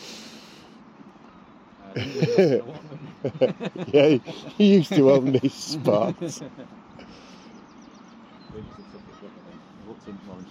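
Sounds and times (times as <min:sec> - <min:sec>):
faint murmuring voices: 0:00.0 - 0:10.4
laughter: 0:01.9 - 0:07.4
speech: 0:02.0 - 0:06.8, 0:10.0 - 0:10.4
tufted duck giving short rough calls: 0:08.6 - 0:10.4.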